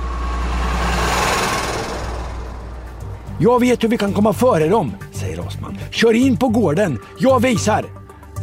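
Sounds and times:
van engine starting and driving off: 0.0 - 5.9
speech: 3.4 - 8.0.

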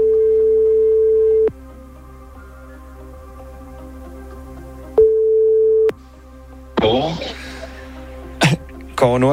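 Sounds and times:
outgoing-call telephone ringback tone, steady low beep: 0.0 - 1.5, 5.0 - 5.9
speech: 9.0 - 9.3.

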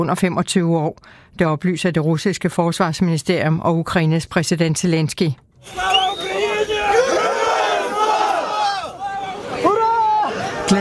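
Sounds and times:
speech: 0.0 - 6.3
crowd cheering and shouting welcoming returning prisoners of war: 5.6 - 10.7.

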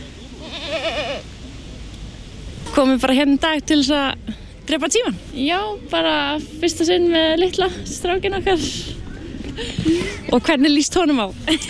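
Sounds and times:
low murmur: 0.0 - 11.6
goat bleating at a family petting zoo: 0.4 - 1.2
speech: 2.8 - 9.0, 9.6 - 11.6.

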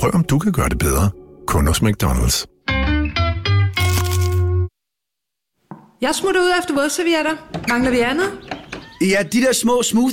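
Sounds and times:
speech: 0.0 - 2.5, 6.0 - 10.1
crunching bite into a crispy chicken burger: 3.8 - 4.5.

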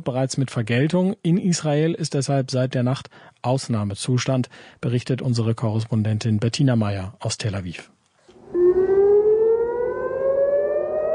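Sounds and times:
speech: 0.0 - 8.0
air raid siren wailing: 8.3 - 11.1.

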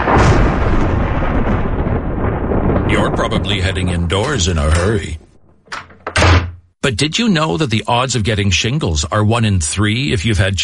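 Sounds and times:
loud thunder rumbling: 0.0 - 6.8
speech: 3.2 - 5.2, 6.8 - 10.6.

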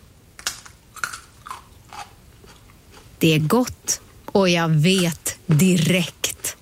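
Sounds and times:
crunchy chewing of a piece of cucumber: 0.4 - 3.1
speech: 3.2 - 6.2.

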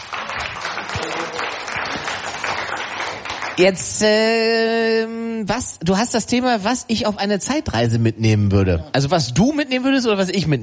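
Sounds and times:
audience applause: 0.0 - 3.8
speech: 3.6 - 10.6.

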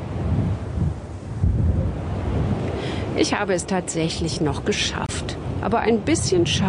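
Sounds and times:
strong wind buffeting the microphone: 0.0 - 6.6
speech: 3.2 - 6.6.

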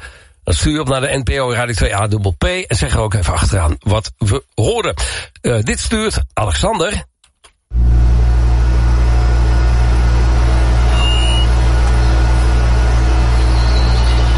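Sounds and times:
speech: 0.5 - 7.1
delivery van refrigeration unit motor running hard in hot weather: 7.7 - 14.3.

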